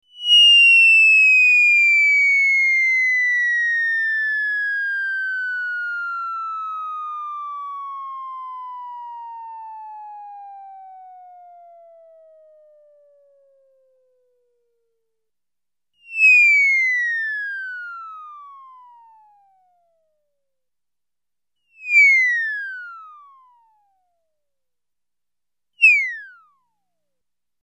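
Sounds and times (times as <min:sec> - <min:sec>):
comic whistle of falling from a height: 0:00.1 - 0:11.4, 0:16.1 - 0:19.4, 0:21.8 - 0:23.5, 0:25.8 - 0:26.4.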